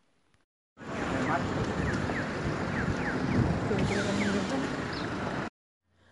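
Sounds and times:
cars passing along city roadways: 0.8 - 5.5.

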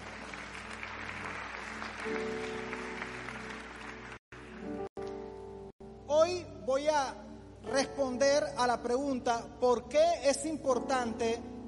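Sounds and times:
congregation applauding loudly: 0.0 - 4.9
speech: 2.0 - 2.5, 6.7 - 11.5.

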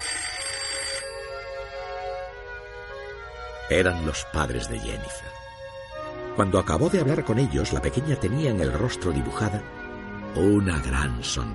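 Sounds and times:
telephone ringing with a bright brassy tone: 0.0 - 2.3
speech: 3.7 - 5.4, 6.4 - 11.5.

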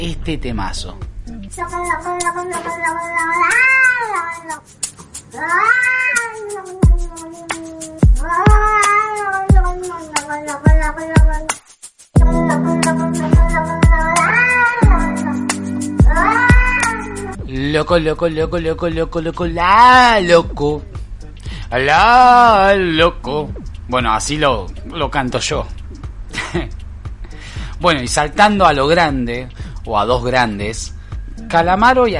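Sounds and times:
speech: 0.1 - 7.6, 8.2 - 11.7, 17.6 - 21.0, 21.7 - 25.8, 26.5 - 26.8, 27.8 - 32.1
steady beat and bass of bouncy song: 0.9 - 2.4, 12.2 - 32.1
fearful cat meow chopped and pitched into melody: 1.3 - 4.7, 5.3 - 11.6, 12.2 - 17.4
laughter: 26.4 - 26.7.

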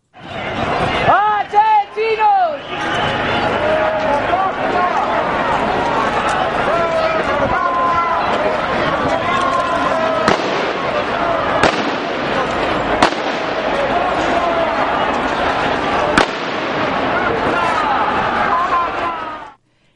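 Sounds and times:
crowd shouting and running: 0.0 - 19.6
rubber bullets fired from launchers during police charge: 11.6 - 12.3.

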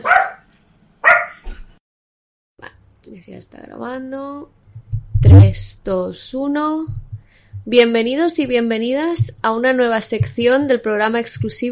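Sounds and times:
dog barking: 0.0 - 1.4
speech: 3.0 - 4.6, 5.3 - 7.0, 7.6 - 11.7.

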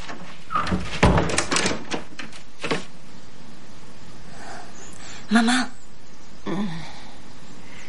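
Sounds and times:
door swinging shut with a latch click: 0.0 - 2.9
speech: 5.3 - 5.7.

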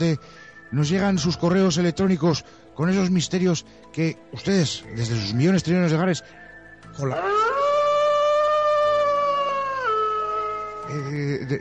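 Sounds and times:
speech: 0.0 - 7.6, 10.9 - 11.5
wolves howling: 7.0 - 11.4.

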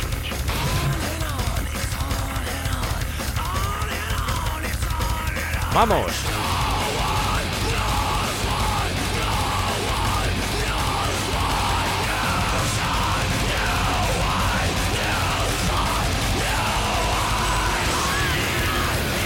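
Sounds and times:
loud aggressive music with harsh yelled vocals and distorted sound: 0.0 - 19.2
speech: 5.8 - 6.4.

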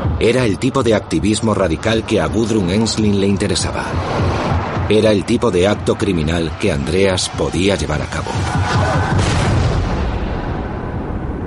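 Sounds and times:
speech: 0.2 - 9.4
bombs exploding in a shopping centre: 8.6 - 11.4.

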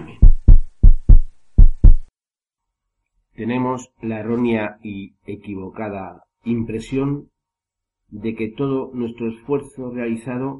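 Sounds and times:
heartbeat thumping: 0.0 - 2.1
speech: 3.4 - 7.3, 8.1 - 10.5.

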